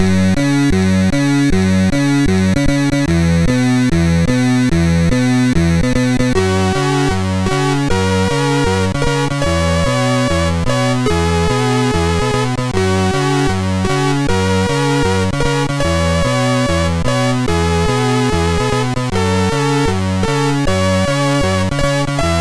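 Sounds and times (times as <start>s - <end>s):
chiptune music on a MOS6581R4 sound chip: 0.2s - 22.3s.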